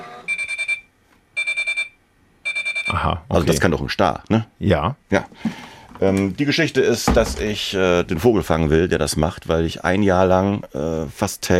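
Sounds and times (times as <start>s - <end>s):
Chinese-made washing machine end-of-cycle beeping: 0.0s - 3.0s
speech: 2.9s - 11.5s.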